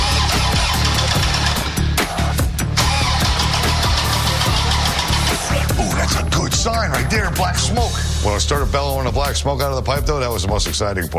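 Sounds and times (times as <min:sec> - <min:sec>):
diesel engine cranking and starting: 0:00.0 - 0:07.5
speech: 0:07.4 - 0:11.1.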